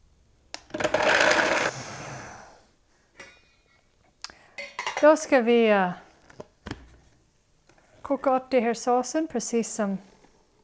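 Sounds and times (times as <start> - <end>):
kitchen blender blending cashew nuts: 0.6 - 2.1
speech: 5.0 - 6.0, 8.1 - 10.1.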